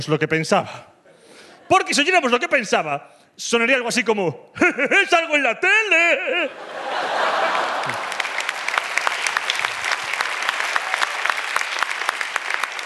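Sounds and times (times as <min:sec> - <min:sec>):
speech: 0:00.0 - 0:00.9, 0:01.7 - 0:07.1
laughter: 0:04.6 - 0:08.4
audience applause: 0:06.8 - 0:12.8.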